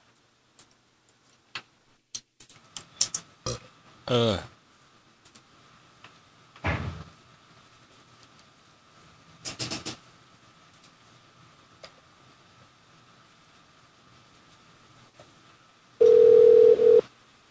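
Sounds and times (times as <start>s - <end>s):
hotel room telephone dial tone: 16.0s - 17.0s.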